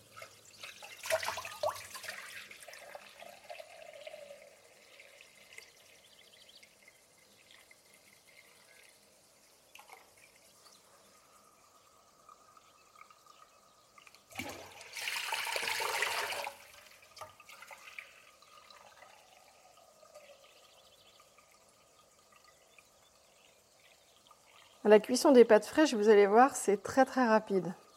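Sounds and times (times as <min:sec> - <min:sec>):
tap water pouring into a cooking pot: 0:00.0 - 0:10.7, 0:12.2 - 0:24.8
speech: 0:24.8 - 0:27.8.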